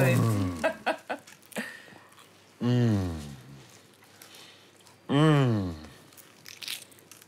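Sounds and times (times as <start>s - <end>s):
drawn-out appreciative vocal sounds: 0.0s - 1.0s, 2.6s - 3.7s, 5.1s - 6.0s
person biting into a crunchy croissant: 0.0s - 7.2s.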